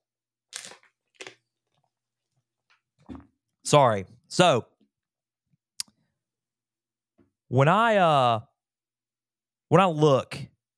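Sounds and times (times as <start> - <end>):
plastic bottle being squeezed: 0.5 - 1.4
speech: 3.7 - 4.7, 7.5 - 8.5, 9.7 - 10.5.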